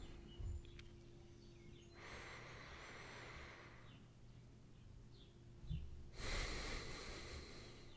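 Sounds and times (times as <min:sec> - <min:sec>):
faint bird chirps: 0:00.0 - 0:06.0, 0:07.6 - 0:07.9
deep breaths in and out: 0:01.9 - 0:04.2, 0:06.1 - 0:07.9.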